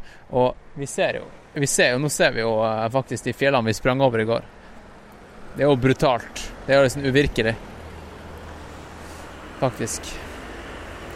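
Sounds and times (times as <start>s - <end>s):
road noise of passing cars: 0.0s - 11.1s
speech: 0.3s - 4.6s, 5.6s - 7.7s, 9.6s - 10.2s.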